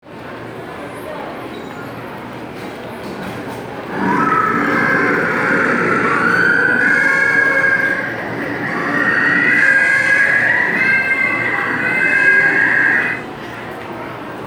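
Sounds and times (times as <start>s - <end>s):
little blue penguin: 3.8s - 13.3s.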